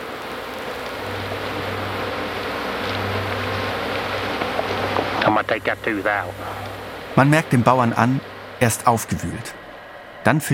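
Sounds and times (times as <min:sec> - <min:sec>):
fly swarms buzzing over cow carcasses: 0:00.0 - 0:10.5
steady hiss of noise: 0:00.0 - 0:10.5
speech: 0:05.2 - 0:09.6, 0:10.2 - 0:10.5.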